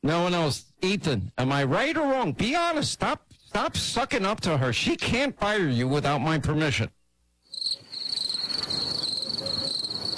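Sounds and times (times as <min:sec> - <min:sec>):
speech: 0:00.0 - 0:07.0
chorus of crickets trilling in the night: 0:07.4 - 0:10.1.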